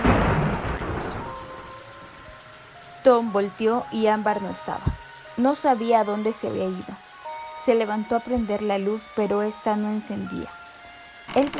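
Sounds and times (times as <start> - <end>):
thunder rumbling: 0.0 - 2.7
steady rain: 0.0 - 11.5
speech: 3.0 - 7.0, 7.6 - 10.6, 11.3 - 11.5.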